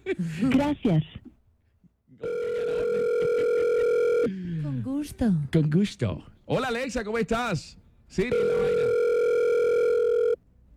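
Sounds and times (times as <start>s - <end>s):
speech: 0.2s - 1.2s, 5.2s - 8.8s
telephone ringback tone on an outgoing call: 2.2s - 4.3s, 8.3s - 10.4s.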